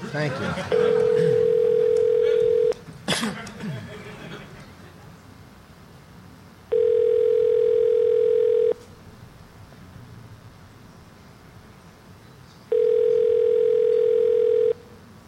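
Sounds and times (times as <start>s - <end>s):
laughter: 0.0s - 5.0s
faint hiss: 0.0s - 15.2s
telephone ringback tone on a call: 0.7s - 2.8s, 6.7s - 8.8s, 12.7s - 14.8s.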